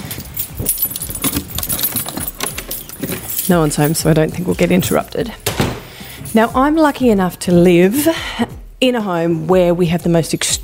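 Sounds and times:
keys jangling while unlocking a house door in Tasmania: 0.0s - 5.5s
speech: 3.5s - 5.5s, 6.3s - 10.6s.

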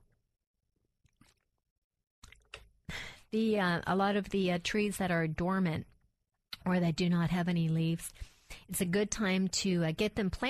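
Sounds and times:
person sipping and gulping water: 1.0s - 2.8s
speech: 3.3s - 5.9s, 6.6s - 10.4s.

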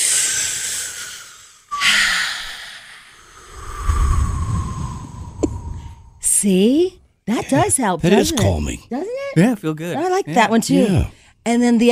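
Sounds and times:
slow deep breath drawn in: 0.0s - 6.2s
speech: 6.4s - 11.9s.

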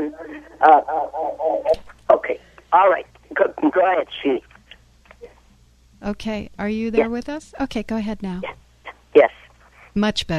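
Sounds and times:
tinny voice from a radio with echo: 0.0s - 4.5s
speech: 0.1s - 1.2s, 3.9s - 4.5s, 6.0s - 8.6s, 10.0s - 10.3s.

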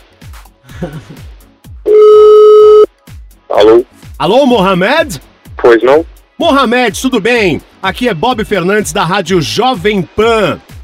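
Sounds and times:
speech: 0.8s - 1.4s, 3.6s - 10.7s
telephone dial tone while placing a call: 1.9s - 2.9s.

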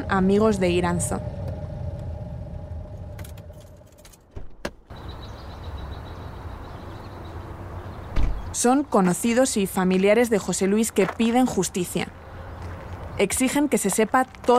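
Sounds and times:
car arriving in Andorra rumbling: 0.0s - 4.4s
speech: 0.1s - 1.4s, 8.6s - 12.2s, 13.2s - 14.5s.

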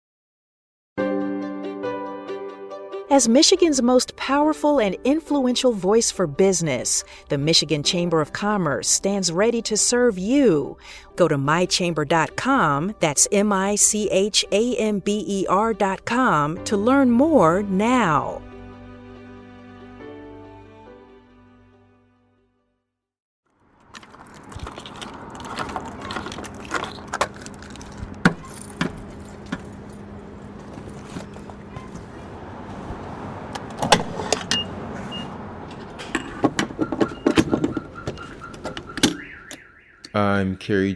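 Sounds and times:
speech: 3.1s - 18.5s, 40.4s - 40.9s
gas pump nozzle whirring while filling a car's gas tank: 24.0s - 39.6s.

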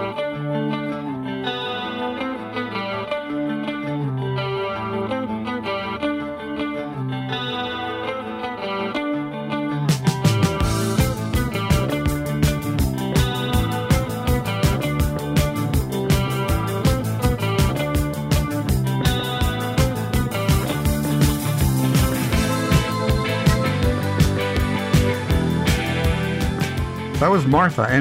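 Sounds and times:
pop rock song: 0.0s - 28.0s
sparse guitar-and-keyboard riff: 0.0s - 28.0s
drums and bass with a driving steady beat: 9.9s - 28.0s
speech: 27.4s - 28.0s.

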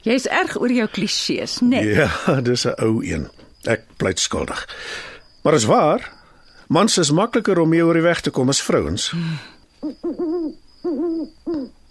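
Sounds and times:
speech: 0.0s - 10.6s
laughter: 1.9s - 2.7s
owl hooting: 9.8s - 11.8s.

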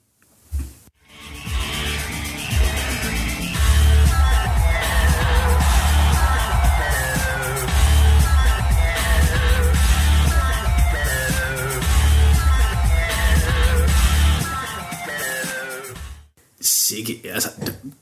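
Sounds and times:
live electronic dance mashup with pounding bass and distorted synth riffs: 1.1s - 16.2s
faint crowd cheering: 2.0s - 15.5s.

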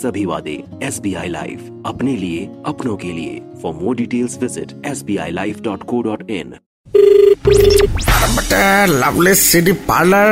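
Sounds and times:
speech: 0.0s - 10.3s
telephone ringing in trilling bursts: 7.0s - 7.8s.

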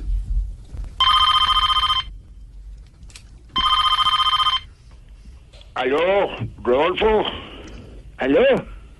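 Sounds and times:
low rumble: 0.0s - 8.9s
telephone ringing with a bright trill: 1.0s - 2.1s, 3.6s - 4.7s
speech: 5.8s - 7.5s, 8.2s - 8.7s.

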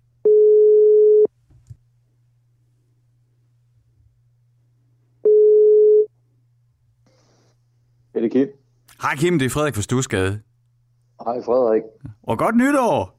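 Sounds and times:
faint low hum: 0.0s - 13.1s
outgoing phone call ringing tone beeps: 0.2s - 1.3s, 5.2s - 6.1s
speech: 8.3s - 10.5s, 11.2s - 13.1s.

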